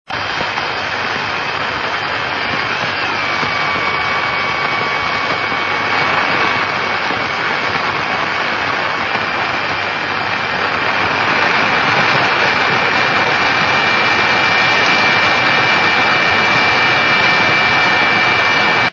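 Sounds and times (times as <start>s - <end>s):
29 MHz radio beacon signal: 0.1s - 18.9s.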